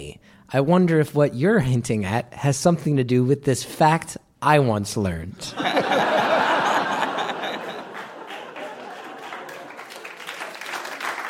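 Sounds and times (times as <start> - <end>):
speech: 0.1 - 5.9
scattered laughter: 5.6 - 9.7
crowd applauding at a live stage event: 6.2 - 11.2.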